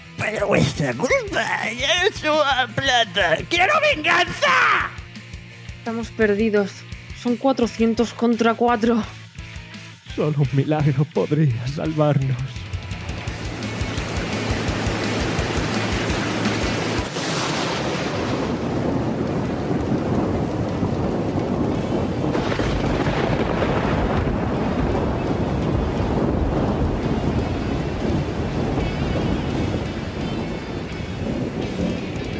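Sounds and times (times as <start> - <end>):
speech: 0.3 - 5.0, 5.8 - 9.2, 10.2 - 12.6
water spraying from activated fire sprinklers: 13.0 - 32.3.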